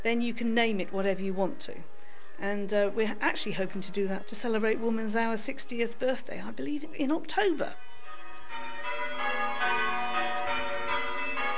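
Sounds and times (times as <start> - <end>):
speech: 0.0 - 7.9
church bells ringing a change-ringing sequence: 6.8 - 11.5.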